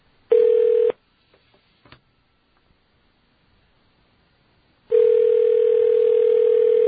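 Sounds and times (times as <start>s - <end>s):
telephone dial tone: 0.3s - 0.9s, 4.9s - 6.8s.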